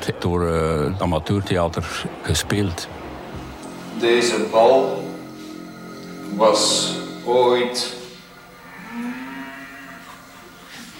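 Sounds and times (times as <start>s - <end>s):
speech: 0.1s - 3.0s, 4.0s - 5.0s, 6.3s - 8.0s
cow mooing: 5.0s - 10.6s.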